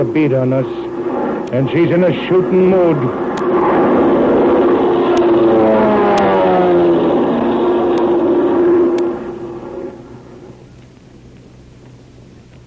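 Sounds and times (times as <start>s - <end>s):
speech: 0.0s - 0.9s, 1.5s - 3.7s
airplane engine flying overhead: 0.0s - 12.6s
faint ticks: 10.7s - 12.6s.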